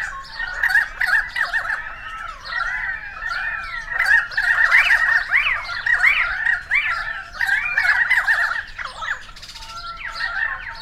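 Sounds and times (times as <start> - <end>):
group of currawongs calling: 0.0 - 10.8.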